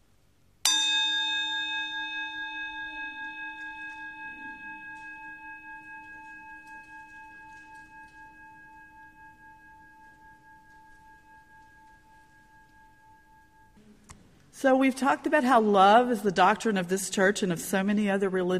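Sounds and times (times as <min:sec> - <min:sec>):
meditation chime struck and ringing: 0:00.7 - 0:13.8
speech: 0:14.6 - 0:18.5.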